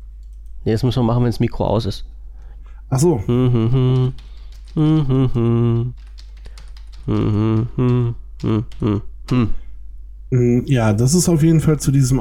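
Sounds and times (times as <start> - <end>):
keys clacking on a computer keyboard as a note is typed: 0.2 - 0.5, 3.8 - 9.4
speech: 0.6 - 2.2, 2.9 - 6.1, 7.1 - 9.6, 10.3 - 12.2
long voiced vocal sounds: 3.0 - 6.0, 7.0 - 9.8.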